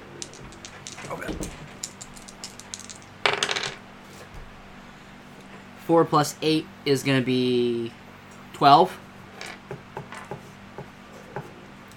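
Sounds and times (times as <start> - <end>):
d8 and d6 dice clattering across a hard tabletop: 0.1 - 3.8, 9.4 - 10.4
speech: 5.9 - 8.0, 8.6 - 9.0.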